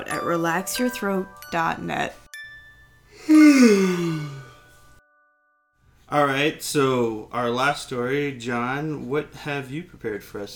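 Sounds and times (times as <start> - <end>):
speech: 0.0 - 2.2, 3.2 - 4.4, 6.1 - 10.5
person yawning: 3.2 - 4.6.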